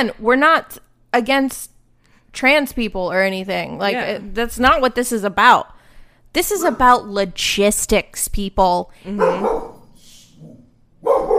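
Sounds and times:
speech: 0:00.0 - 0:01.7, 0:02.3 - 0:09.7
dog barking: 0:09.2 - 0:09.8, 0:11.0 - 0:11.3.

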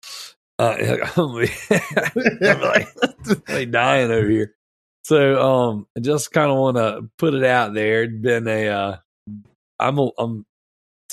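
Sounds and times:
laughter: 0:00.6 - 0:04.5
speech: 0:00.6 - 0:10.5
short raspy cough: 0:01.7 - 0:03.6.

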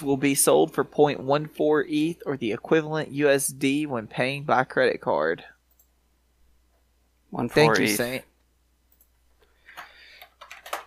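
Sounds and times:
speech: 0:00.0 - 0:05.5, 0:07.3 - 0:08.3
typing on a keyboard: 0:08.9 - 0:10.8.

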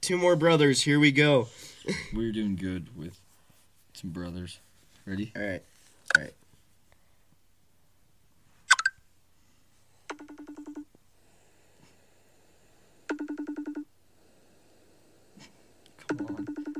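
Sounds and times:
speech: 0:00.0 - 0:03.2, 0:04.0 - 0:06.4
phone call ringing tone resembling a FaceTime call: 0:10.1 - 0:10.9, 0:13.1 - 0:13.9, 0:16.0 - 0:16.7.

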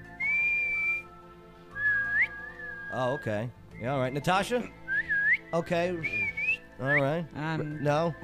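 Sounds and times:
person whistling: 0:00.2 - 0:01.1, 0:01.7 - 0:03.9, 0:04.8 - 0:07.1
speech: 0:02.9 - 0:04.8, 0:05.5 - 0:08.2.

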